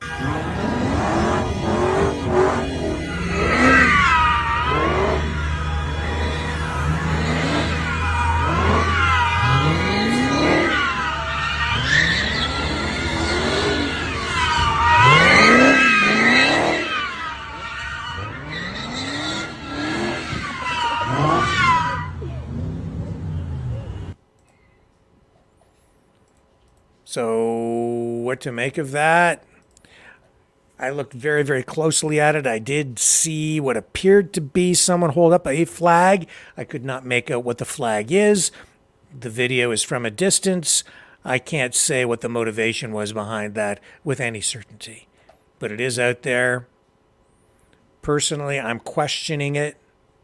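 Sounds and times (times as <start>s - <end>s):
car engine revving doing donuts and burnouts in the street: 0.0s - 24.2s
car tires squealing during burnouts: 0.0s - 24.2s
voices of onlookers: 0.0s - 24.2s
speech: 28.3s - 29.5s, 30.8s - 46.7s, 48.0s - 49.8s.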